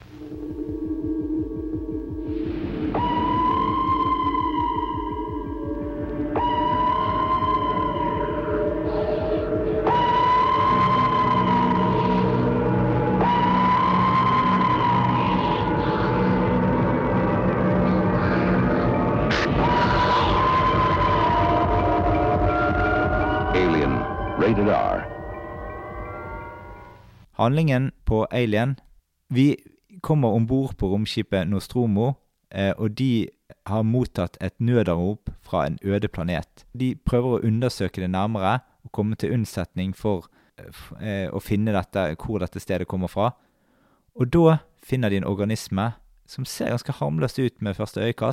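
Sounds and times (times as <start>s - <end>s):
deep rumble: 0.0s - 26.9s
siren-like tonal blasts: 0.0s - 27.1s
ominous sci-fi horror trailer music: 0.0s - 27.2s
speech: 27.4s - 43.5s, 44.2s - 48.3s.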